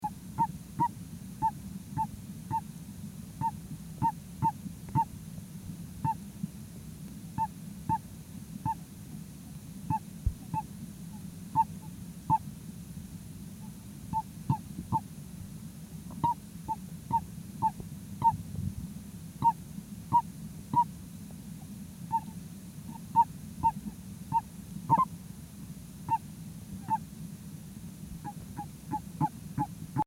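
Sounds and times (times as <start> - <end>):
Bufo torrenticola calling: 0.0 - 2.7, 3.4 - 5.2, 6.0 - 6.3, 7.4 - 8.8, 9.9 - 12.5, 13.6 - 15.1, 16.1 - 18.4, 19.4 - 20.9, 22.1 - 25.1, 26.1 - 27.1, 28.2 - 29.8.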